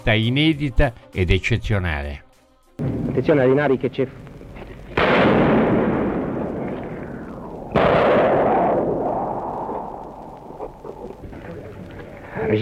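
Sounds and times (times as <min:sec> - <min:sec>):
speech: 0:00.0 - 0:02.2, 0:02.8 - 0:04.2
heavy gunfire blasts during street fighting amid city ruins: 0:04.9 - 0:10.2.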